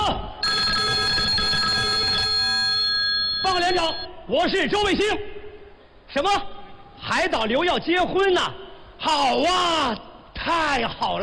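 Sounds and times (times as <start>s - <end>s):
telephone ringing: 0.4s - 4.1s
speech: 3.7s - 5.3s, 6.1s - 11.2s.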